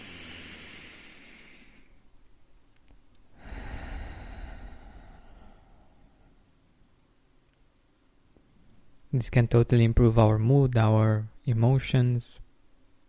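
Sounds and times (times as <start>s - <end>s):
deep breath in and out: 0.0s - 2.0s, 3.3s - 6.6s
speech: 9.2s - 12.4s.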